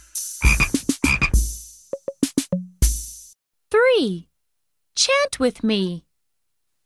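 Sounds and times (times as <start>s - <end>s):
frog croaking: 0.4s - 1.4s
speech: 4.0s - 4.3s, 5.0s - 6.1s.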